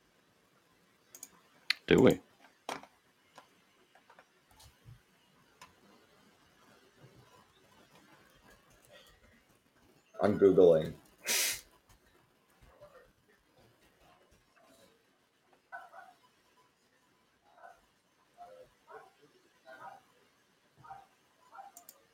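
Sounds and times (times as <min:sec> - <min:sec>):
speech: 0:01.9 - 0:02.3, 0:10.3 - 0:11.0
neighbor's dogs barking: 0:15.7 - 0:16.2, 0:17.5 - 0:20.1, 0:20.8 - 0:21.8.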